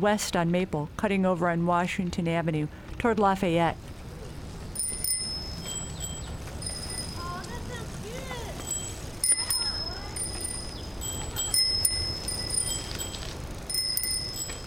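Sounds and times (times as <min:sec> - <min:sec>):
speech: 0:00.0 - 0:04.0
steady outdoor road noise: 0:00.0 - 0:14.6
bicycle bells rung by children riding bikes: 0:04.7 - 0:14.6
faint children's voices calling out: 0:07.1 - 0:11.4.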